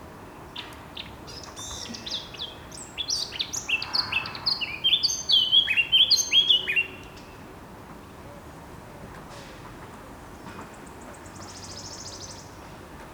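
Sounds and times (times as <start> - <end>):
Eurasian blackcap song: 0.6 - 7.3.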